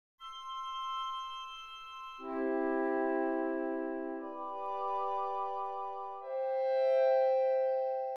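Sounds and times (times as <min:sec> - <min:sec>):
woodwind instrument: 0:02.2 - 0:08.1.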